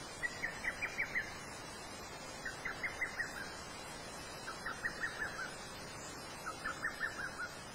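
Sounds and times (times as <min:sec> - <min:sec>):
lesser cuckoo calling: 0:00.2 - 0:01.4, 0:02.4 - 0:03.7, 0:04.4 - 0:07.6.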